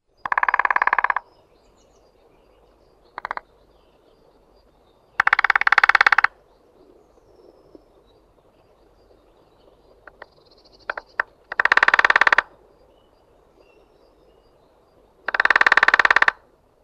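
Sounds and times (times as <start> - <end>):
lesser spotted woodpecker drumming: 0.2 - 1.3, 3.2 - 3.4, 5.2 - 6.4, 10.0 - 12.6, 15.2 - 16.5.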